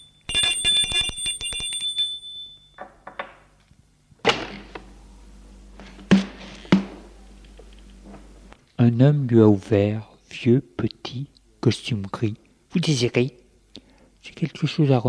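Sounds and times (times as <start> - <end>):
doorbell ringing at a house: 0.0 - 2.8
dull clunks: 5.8 - 7.1
speech: 8.9 - 13.4, 14.2 - 15.0.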